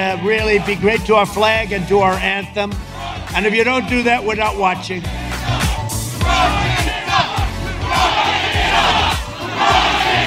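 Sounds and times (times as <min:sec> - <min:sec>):
speech: 0:00.0 - 0:05.2
large crowd of followers chanting in unison at a rally: 0:02.8 - 0:03.4, 0:05.1 - 0:10.2.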